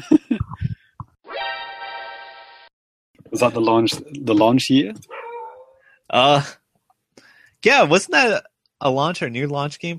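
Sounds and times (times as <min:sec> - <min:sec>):
speech: 0:03.3 - 0:05.2, 0:06.1 - 0:06.6, 0:07.6 - 0:09.9
household dog barking: 0:05.1 - 0:05.8.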